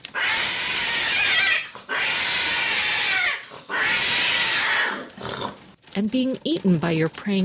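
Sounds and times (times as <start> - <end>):
cats yowling while mating: 0.1 - 5.1
speech: 6.0 - 7.4.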